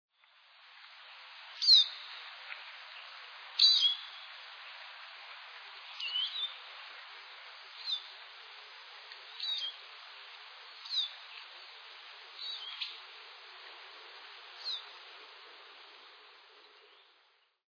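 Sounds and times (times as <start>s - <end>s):
soft hiss: 0.1s - 17.6s
Eurasian siskin giving short high thin calls: 1.5s - 2.3s, 2.9s - 4.5s, 5.8s - 6.8s, 7.6s - 13.4s, 14.2s - 17.5s.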